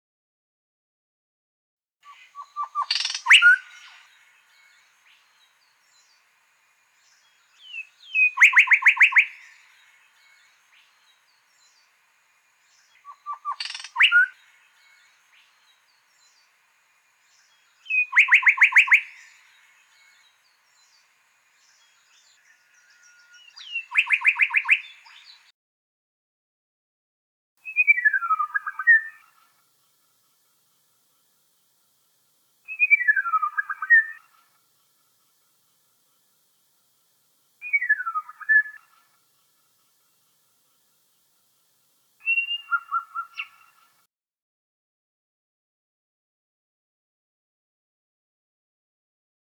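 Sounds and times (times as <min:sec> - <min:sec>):
little shrike thrush calling: 0:02.1 - 0:25.5, 0:27.6 - 0:31.4, 0:32.6 - 0:36.6, 0:37.6 - 0:41.1, 0:42.2 - 0:44.0.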